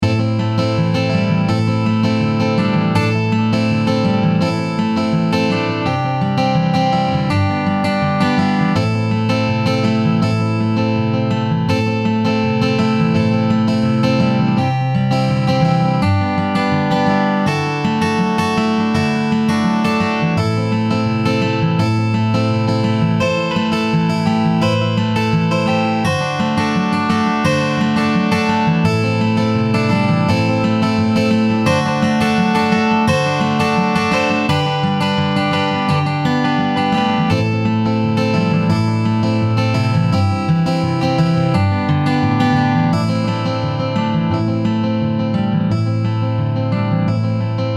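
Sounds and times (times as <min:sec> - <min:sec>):
acoustic guitar sound on Nord Grand: 0:00.0 - 0:47.7.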